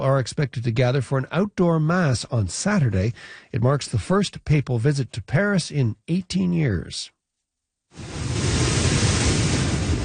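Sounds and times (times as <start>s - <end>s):
speech: 0.1s - 7.2s
hurricane waves surging: 8.0s - 10.0s
hurricane wind roaring: 8.0s - 10.0s.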